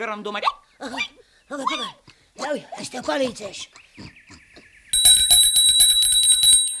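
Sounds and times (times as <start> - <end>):
speech: 0.0 - 4.1
doorbell ringing: 5.0 - 6.7.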